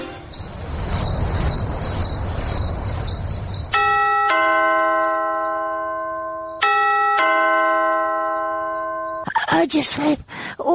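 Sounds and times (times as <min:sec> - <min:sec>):
high pulsing insect-like chirping: 0:00.2 - 0:04.2, 0:05.0 - 0:06.7, 0:07.6 - 0:10.7
electronic doorbell chime at a house door at midnight: 0:03.8 - 0:09.2
speech: 0:09.8 - 0:10.7.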